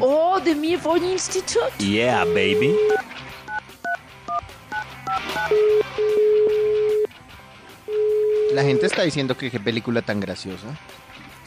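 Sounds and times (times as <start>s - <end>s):
speech: 0.0s - 3.0s, 8.6s - 11.4s
telephone number dialed on a keypad: 1.8s - 7.1s, 7.9s - 9.0s.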